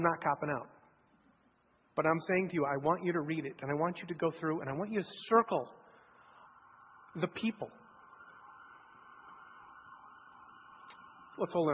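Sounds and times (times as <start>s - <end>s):
speech: 0.0s - 0.8s, 2.0s - 5.8s, 7.1s - 7.8s, 11.4s - 11.7s
emergency vehicle siren wailing outside: 3.8s - 11.7s.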